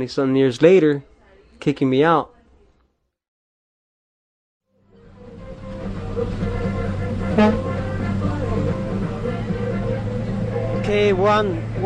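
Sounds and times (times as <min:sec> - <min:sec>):
speech: 0:00.0 - 0:02.3, 0:07.4 - 0:07.7, 0:11.0 - 0:11.8
old school bus diesel engine drone: 0:04.8 - 0:11.8
horn toot: 0:06.3 - 0:08.9.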